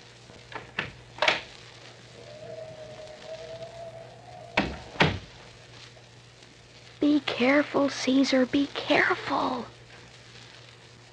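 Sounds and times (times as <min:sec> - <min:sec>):
door creaking while it swings: 0:02.2 - 0:05.3
knocks and rattles as a door is handled: 0:04.6 - 0:05.2
door thumping shut: 0:04.6 - 0:05.3
speech: 0:07.4 - 0:09.8.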